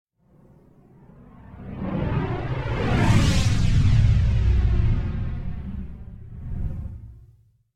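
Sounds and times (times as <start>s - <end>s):
phased whoosh: 1.7s - 7.4s
explosion: 2.4s - 7.3s.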